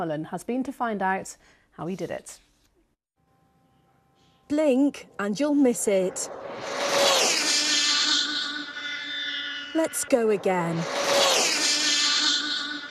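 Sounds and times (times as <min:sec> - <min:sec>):
speech: 0:00.0 - 0:02.5, 0:04.5 - 0:07.0, 0:09.8 - 0:11.0
remote control car motor whining speeding past: 0:06.1 - 0:12.8.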